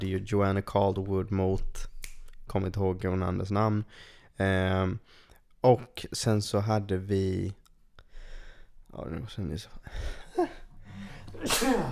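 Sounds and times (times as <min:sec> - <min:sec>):
speech: 0:00.0 - 0:01.9, 0:02.5 - 0:07.6, 0:08.9 - 0:10.6, 0:11.4 - 0:11.8
short intake of breath: 0:09.9 - 0:11.8
sneeze: 0:11.4 - 0:11.8.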